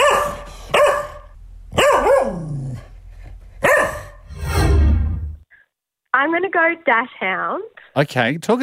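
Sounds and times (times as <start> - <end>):
dog barking: 0.0 - 2.6, 3.6 - 4.3
speech: 6.2 - 8.6.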